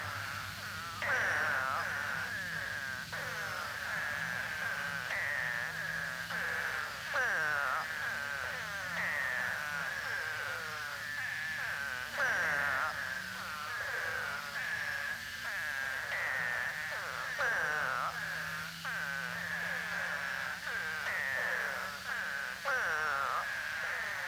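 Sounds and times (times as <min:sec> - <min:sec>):
Eastern spadefoot chorus of nasal downward-sliding moans in Florida: 0:00.0 - 0:24.2.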